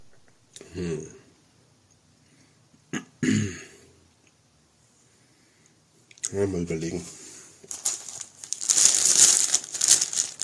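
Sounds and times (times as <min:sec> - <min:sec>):
speech: 0:00.7 - 0:01.2, 0:06.3 - 0:07.2
plastic or foil packaging crinkling: 0:07.6 - 0:10.4.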